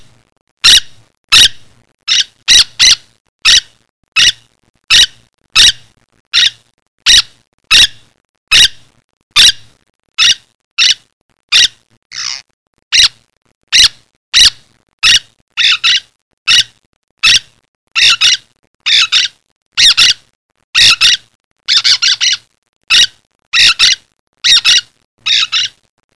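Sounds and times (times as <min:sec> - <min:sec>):
bird squawking harshly: 0:02.1 - 0:05.8, 0:06.4 - 0:08.8, 0:10.2 - 0:13.1, 0:13.8 - 0:20.2, 0:20.8 - 0:25.8.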